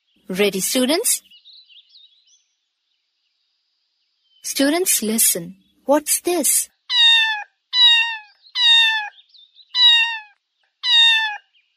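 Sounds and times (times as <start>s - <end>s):
speech: 0.3s - 1.3s, 4.4s - 6.7s
cat meowing: 6.9s - 9.1s, 9.8s - 11.4s.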